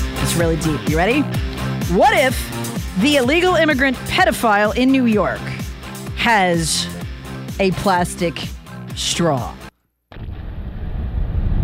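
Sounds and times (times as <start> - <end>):
speech: 0.4 - 5.5, 6.2 - 7.0, 7.6 - 9.6
explosion sound effect: 10.1 - 11.6.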